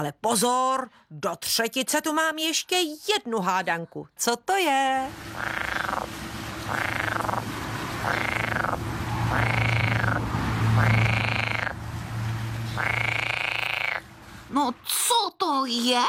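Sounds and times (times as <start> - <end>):
speech: 0.0 - 5.9, 14.5 - 16.0
frog croaking: 5.3 - 11.8, 12.7 - 14.1.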